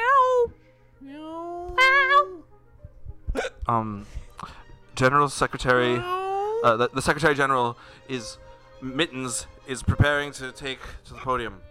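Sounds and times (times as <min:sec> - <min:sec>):
human voices imitating cat meows: 0:01.5 - 0:02.4
speech: 0:03.7 - 0:11.6.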